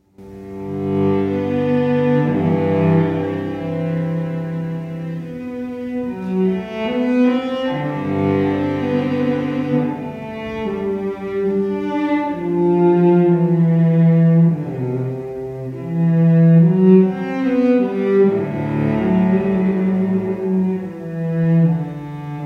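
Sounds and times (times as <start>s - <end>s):
cello: 0.0s - 22.4s.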